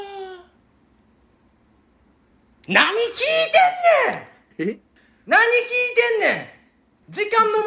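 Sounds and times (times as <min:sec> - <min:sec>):
man imitating an elephant's trumpeting with his voice: 0:02.7 - 0:04.5, 0:05.3 - 0:07.6
speech: 0:02.7 - 0:04.8.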